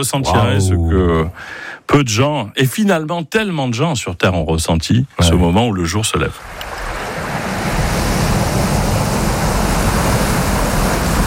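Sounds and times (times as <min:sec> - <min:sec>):
speech: 0:00.0 - 0:06.8
sea waves breaking on a beach: 0:06.4 - 0:11.2.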